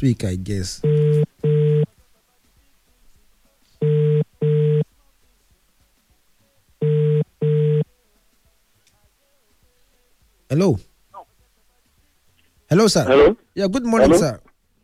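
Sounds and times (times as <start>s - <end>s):
speech: 0.0s - 1.1s, 10.5s - 10.9s, 12.7s - 14.5s
faint hiss: 0.0s - 14.8s
telephone ringback tone on a call: 0.8s - 1.9s, 3.8s - 4.8s, 6.8s - 7.8s.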